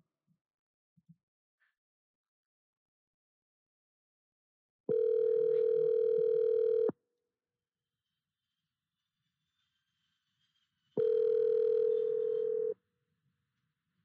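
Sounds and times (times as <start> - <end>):
outgoing phone call ringback tone: 4.9 - 6.9, 11.0 - 12.8.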